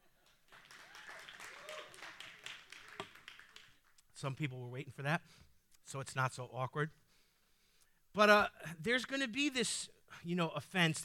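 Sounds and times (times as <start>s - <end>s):
audience clapping: 0.0s - 4.0s
speech: 4.2s - 7.0s, 8.2s - 11.0s.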